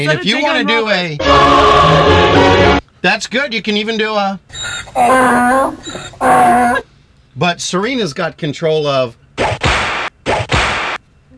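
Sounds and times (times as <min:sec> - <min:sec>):
speech: 0:00.0 - 0:09.6
whip-crack sound effects: 0:09.4 - 0:11.0.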